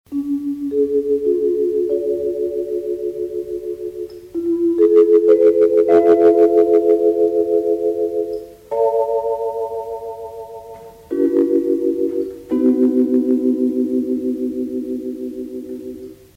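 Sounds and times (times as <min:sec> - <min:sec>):
vibraphone: 0:00.1 - 0:16.2.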